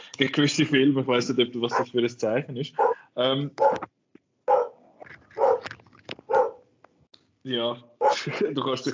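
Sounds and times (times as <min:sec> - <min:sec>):
speech: 0:00.2 - 0:04.0, 0:07.4 - 0:08.9
dog barking: 0:01.7 - 0:01.9, 0:02.8 - 0:03.0, 0:03.6 - 0:03.8, 0:04.5 - 0:04.8, 0:05.4 - 0:05.7, 0:06.3 - 0:06.7, 0:08.0 - 0:08.3
laughter: 0:08.1 - 0:08.6.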